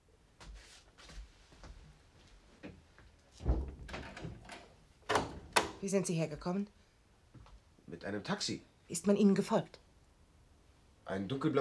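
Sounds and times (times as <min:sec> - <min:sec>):
door being shut and locked: 0:03.5 - 0:05.8
speech: 0:05.8 - 0:06.8, 0:08.0 - 0:09.8, 0:11.1 - 0:11.5.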